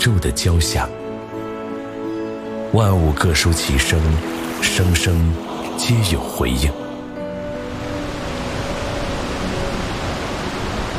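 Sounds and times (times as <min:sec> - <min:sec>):
speech: 0:00.0 - 0:01.0, 0:02.7 - 0:06.8
waterfall at Dehang in Xiangxi China roaring: 0:07.6 - 0:10.9.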